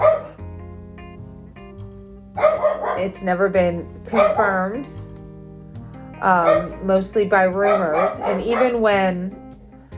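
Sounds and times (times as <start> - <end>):
dog barking: 0.0 - 0.4, 2.4 - 3.2, 4.1 - 4.6, 6.4 - 6.8, 7.6 - 8.9
speech: 2.4 - 5.1, 6.2 - 9.4.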